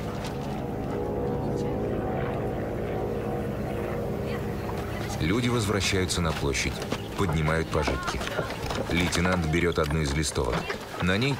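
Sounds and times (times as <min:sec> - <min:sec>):
bomber aircraft flying away with engine drone: 0:00.0 - 0:08.7
speech: 0:05.2 - 0:11.3.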